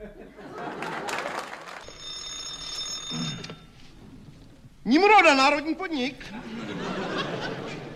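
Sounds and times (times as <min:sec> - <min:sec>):
laughter: 0:00.0 - 0:01.8, 0:06.3 - 0:07.9
telephone ringing with a high-pitched electronic tone: 0:01.8 - 0:04.2
speech: 0:04.9 - 0:06.6.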